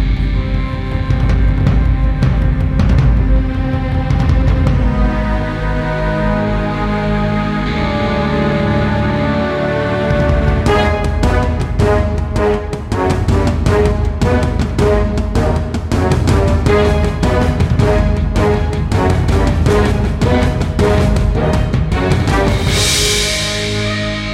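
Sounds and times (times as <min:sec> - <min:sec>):
dramatic orchestral fanfare: 0:00.2 - 0:24.3.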